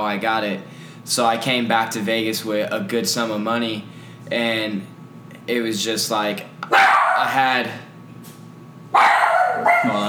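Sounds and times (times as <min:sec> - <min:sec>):
speech: 0:00.0 - 0:04.9, 0:05.5 - 0:07.8
dog barking loudly: 0:06.7 - 0:07.4, 0:08.9 - 0:10.0.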